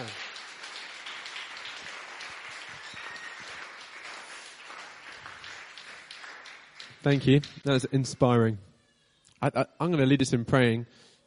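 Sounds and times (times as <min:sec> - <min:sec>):
room full of people applauding a speaker: 0:00.0 - 0:08.4
speech: 0:07.0 - 0:08.7, 0:09.4 - 0:11.1.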